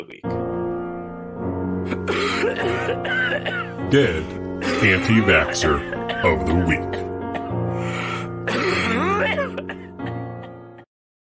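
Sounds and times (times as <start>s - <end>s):
speech: 0.0s - 0.4s, 1.8s - 7.1s
person coughing: 1.9s - 7.6s, 8.4s - 10.5s.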